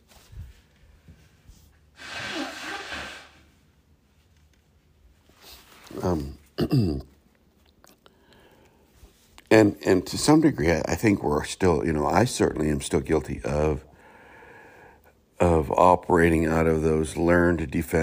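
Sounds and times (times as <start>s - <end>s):
person blowing their nose: 1.9s - 3.6s
speech: 6.0s - 7.1s, 9.6s - 13.9s, 15.8s - 18.0s.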